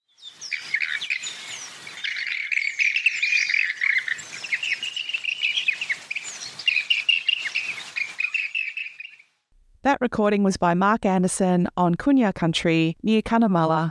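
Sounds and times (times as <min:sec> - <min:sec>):
rainbow bee-eater calls in Kunya Country near Cunnamulla in Queensland: 0:00.1 - 0:09.3
speech: 0:09.9 - 0:13.8.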